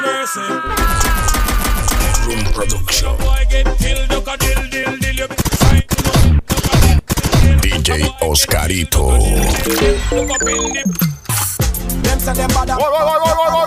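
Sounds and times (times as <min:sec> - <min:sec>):
speech: 0:00.2 - 0:00.9, 0:02.6 - 0:05.4, 0:07.9 - 0:11.1, 0:12.0 - 0:13.6
sharper separate gunshots: 0:00.7 - 0:04.6, 0:05.3 - 0:08.0
machine-gun fire sound effect: 0:00.7 - 0:07.6.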